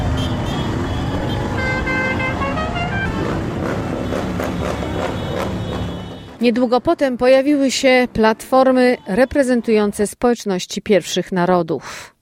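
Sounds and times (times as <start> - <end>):
motorcycle horns honking in a parade: 0.0 - 6.4
motorcycle engines rumbling in a parade: 0.0 - 9.1
speech: 6.4 - 12.2.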